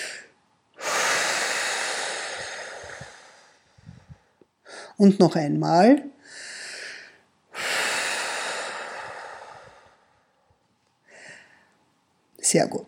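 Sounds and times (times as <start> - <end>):
person exhaling deeply in a breathing exercise: 0.0 - 5.0, 6.2 - 10.4, 11.1 - 11.7
speech: 5.0 - 6.1, 12.5 - 12.8.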